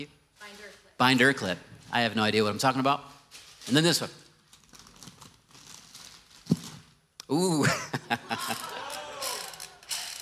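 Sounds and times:
speech: 1.0s - 4.2s, 7.3s - 8.6s
laughter: 7.5s - 9.8s
hand drill cranked in both directions ratcheting: 8.5s - 10.1s.

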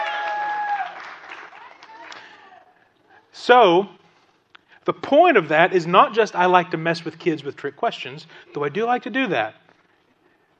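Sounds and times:
audience applause: 0.0s - 2.6s
speech: 3.4s - 4.0s, 4.8s - 9.6s.

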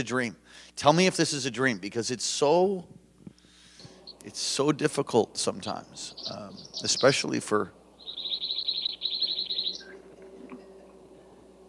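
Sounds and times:
speech: 0.0s - 3.0s, 4.2s - 7.8s
faint low hum: 0.1s - 11.6s
small bird chirping: 3.9s - 10.1s.

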